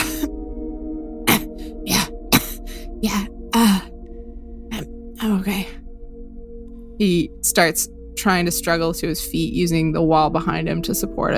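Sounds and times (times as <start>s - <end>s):
low steady hum: 0.0s - 11.3s
person acting out straining to clear throat: 1.3s - 2.9s
speech: 3.0s - 3.7s, 7.0s - 11.3s.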